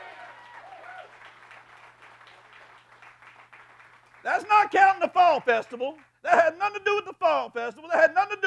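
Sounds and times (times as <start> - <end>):
whistle or cheer: 0.0 - 1.2
congregation applauding: 0.0 - 6.2
speech: 4.2 - 8.4.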